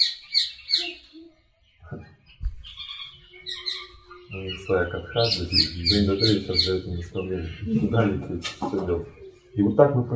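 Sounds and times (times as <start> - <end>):
parrot giving harsh squawking calls: 0.0 - 1.1, 2.6 - 8.0
speech: 4.3 - 10.1.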